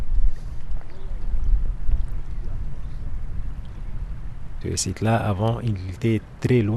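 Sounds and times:
wind buffeting the microphone on a seawall facing Kraten beach: 0.0 - 6.7
speech: 4.6 - 6.7.

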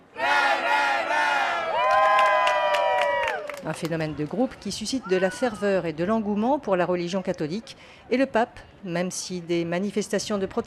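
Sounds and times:
crowd of young Catholic pilgrims shouting greetings in unison: 0.0 - 3.4
crowd of young Catholic pilgrims cheering: 0.2 - 3.8
speech: 3.6 - 10.6.

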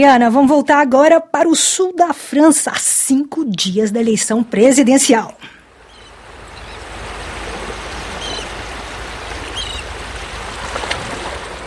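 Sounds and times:
speech: 0.0 - 5.6
water lapping in a harbor: 5.3 - 11.6
seagull cries: 5.8 - 10.1.

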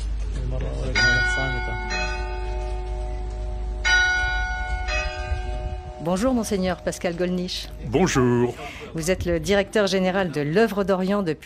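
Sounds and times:
newly cast church bells ringing in a convent church: 0.9 - 7.8
speech: 6.0 - 11.4.

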